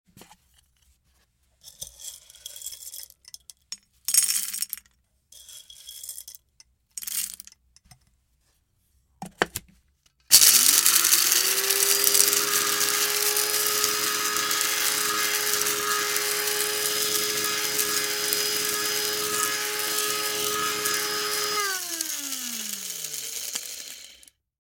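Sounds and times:
coffee grinder: 1.7s - 3.1s, 10.3s - 24.4s.

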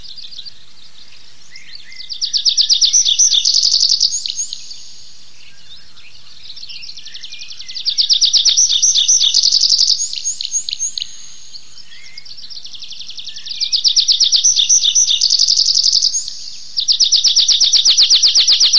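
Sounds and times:
tree pipit singing, Anthus trivialis: 2.3s - 5.1s, 7.7s - 18.7s.

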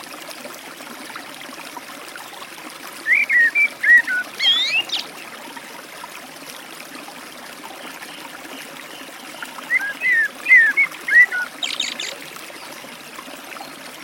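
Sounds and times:
forest stream flowing water: 0.0s - 14.0s
Eurasian blackbird delivering warbled whistles beside a forest stream: 3.1s - 5.1s, 9.7s - 12.7s.

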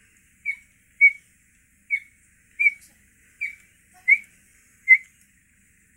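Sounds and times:
cheetah squeaking: 0.4s - 1.2s, 1.9s - 4.3s, 4.9s - 5.1s.

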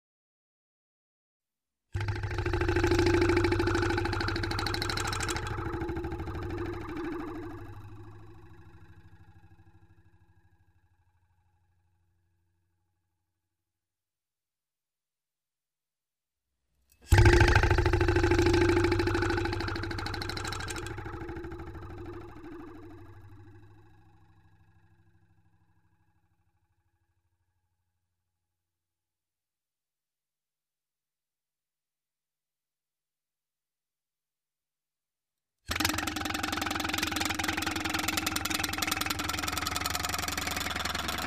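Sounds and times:
vibrating metal: 2.0s - 10.5s, 17.1s - 24.8s, 35.7s - 41.2s.

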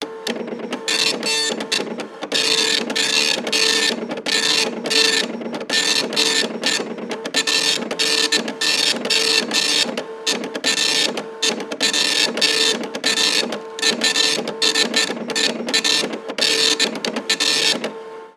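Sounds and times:
dot matrix printer printing: 0.0s - 18.2s.

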